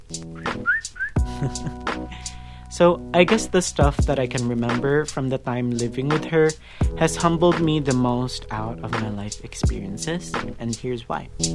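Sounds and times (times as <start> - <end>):
speech: 0.1 - 11.5
person whistling short rising notes: 0.3 - 2.2.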